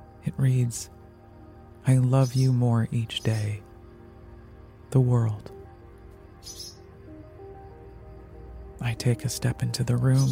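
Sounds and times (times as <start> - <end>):
speech: 0.2 - 1.0, 1.8 - 3.7, 4.9 - 5.6, 6.4 - 6.7, 8.8 - 10.3
high-pitched bird call inside a house: 6.4 - 6.8.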